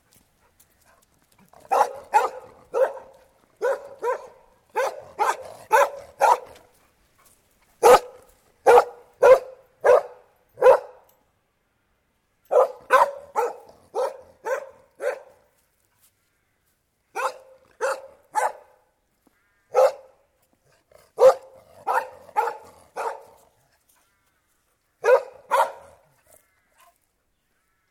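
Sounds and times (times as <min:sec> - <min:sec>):
collie dog barking outdoors: 0:01.6 - 0:06.7, 0:07.8 - 0:11.1, 0:12.5 - 0:15.5, 0:17.2 - 0:18.8, 0:19.7 - 0:20.2, 0:21.2 - 0:23.4, 0:25.0 - 0:26.2.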